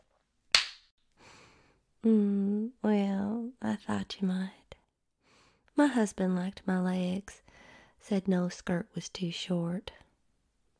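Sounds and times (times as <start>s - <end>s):
hand slapping buttocks: 0.5s - 0.9s
speech: 2.0s - 2.3s, 3.8s - 4.6s, 5.8s - 7.4s, 8.0s - 10.0s.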